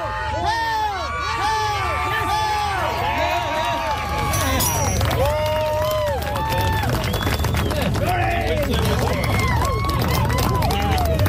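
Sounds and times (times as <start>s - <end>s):
crowd shouting and cheering at heavy stone lifting: 0.0s - 11.2s.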